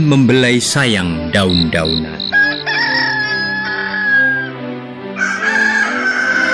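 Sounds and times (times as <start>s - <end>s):
speech: 0.0s - 2.6s
two roosters crowing and answering each other: 2.2s - 4.6s, 5.2s - 6.5s.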